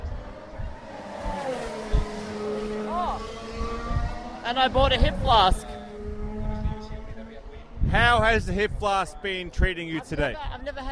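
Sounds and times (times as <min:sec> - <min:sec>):
race cars speeding past: 0:00.0 - 0:07.9
speech: 0:04.5 - 0:05.7, 0:07.9 - 0:10.8.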